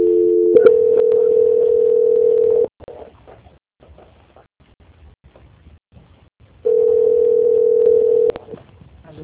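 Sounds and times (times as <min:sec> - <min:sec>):
telephone tone while a call is being transferred: 0:00.0 - 0:02.7, 0:06.6 - 0:08.4.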